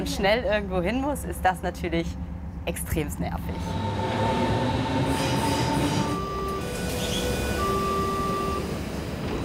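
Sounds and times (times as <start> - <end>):
S-Bahn commuter train rumbling: 0.0 - 9.4
speech: 0.2 - 4.0
high squealing whines from train wheels and motors: 3.6 - 8.7.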